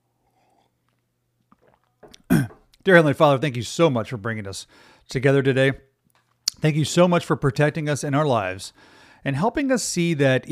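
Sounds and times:
person sipping coffee: 0.0s - 2.8s
slurp: 0.2s - 2.5s
soft wet mouth and swallowing noises: 0.8s - 2.8s
speech: 2.8s - 5.9s, 6.6s - 10.5s.

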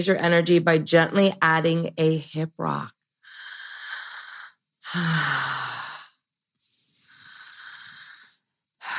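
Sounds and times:
speech: 0.0s - 3.0s, 4.9s - 5.7s
slow breathing through an open mouth with a throaty rasp: 3.2s - 8.9s.

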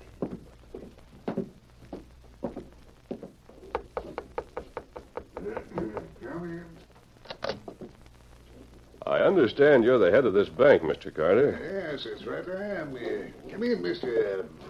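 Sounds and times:
footsteps across a hard floor: 0.0s - 6.0s
knocks on a wooden door at the back of a bank: 2.4s - 6.2s
speech: 9.3s - 14.6s.

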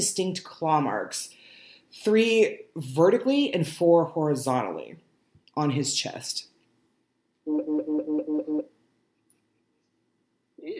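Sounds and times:
speech: 0.0s - 5.0s, 5.6s - 6.5s, 7.4s - 7.8s
mobile phone vibrating on silent: 7.5s - 8.7s.

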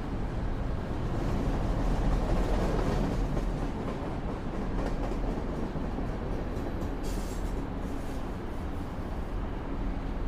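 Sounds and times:
train rumbling on the way to Leipzig: 0.0s - 10.2s
brief bright hiss: 7.0s - 8.3s.

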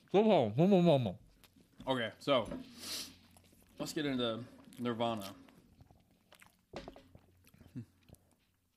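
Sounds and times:
speech: 0.1s - 1.2s, 1.8s - 2.9s, 3.8s - 5.4s
wet chewing of mac and hot dogs: 1.2s - 2.0s, 2.7s - 8.7s.

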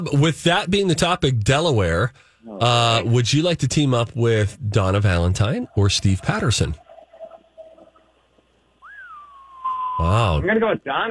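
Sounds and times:
speech: 0.0s - 6.8s, 10.0s - 11.0s
person whistling: 8.8s - 10.3s.

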